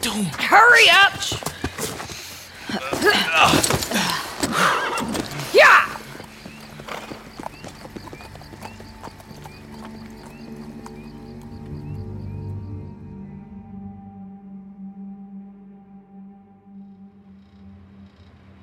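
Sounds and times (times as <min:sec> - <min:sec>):
speech: 0:00.0 - 0:01.6, 0:02.7 - 0:04.1
horse hooves clip-clopping while riders travel toward a compound: 0:00.0 - 0:12.0
sustained tonal background: 0:02.5 - 0:18.6.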